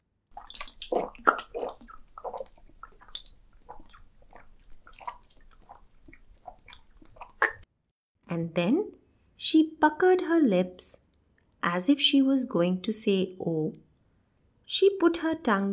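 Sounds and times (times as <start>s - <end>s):
person gulping down a big glass of water: 0.3s - 7.7s
speech: 8.4s - 11.0s, 11.6s - 13.8s, 14.7s - 15.7s.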